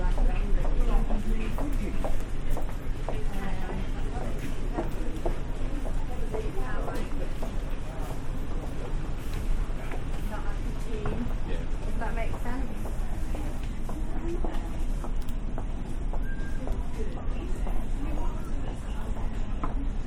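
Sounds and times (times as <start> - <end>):
footsteps in a busy shop: 0.0 - 19.8
crowd murmur of many overlapping voices inside a busy shop: 0.0 - 20.0
brief brighter tone: 16.2 - 16.7.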